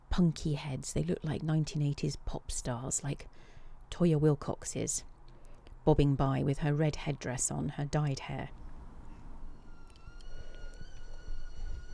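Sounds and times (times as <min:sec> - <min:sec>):
speech: 0:00.2 - 0:05.1, 0:05.8 - 0:08.6
kettle whistling on the boil: 0:09.3 - 0:11.9.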